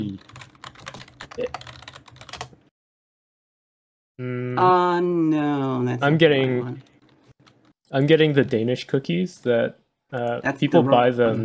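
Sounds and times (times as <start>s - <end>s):
search being typed on a computer keyboard: 0.0s - 2.6s
speech: 4.2s - 6.9s, 7.9s - 11.4s.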